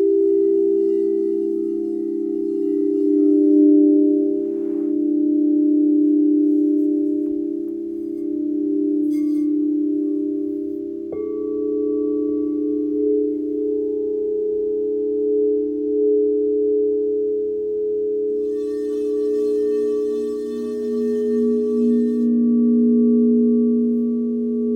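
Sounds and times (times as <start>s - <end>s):
crystal singing bowls humming in an overlapping drone: 0.0s - 24.7s.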